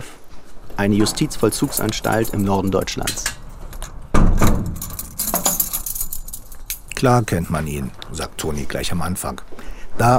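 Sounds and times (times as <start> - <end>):
quiet hiss: 0.0 - 10.1
speech: 0.8 - 3.4, 7.0 - 10.1
keys turning in a lock at a prison: 0.9 - 8.2.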